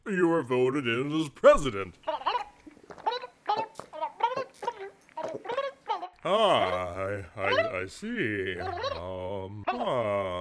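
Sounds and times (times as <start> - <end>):
speech: 0.1 - 2.2, 6.2 - 10.4
person imitating turkey gobble in reply to an interview question: 2.1 - 7.8, 8.4 - 10.4.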